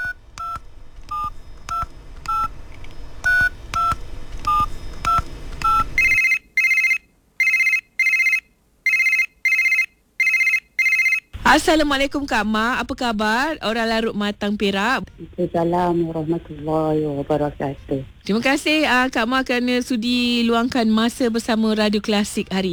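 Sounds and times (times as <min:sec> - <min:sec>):
touch-tone beeps of a phone number being keyed in: 0:00.0 - 0:02.6, 0:03.2 - 0:11.3
speech: 0:11.5 - 0:22.7.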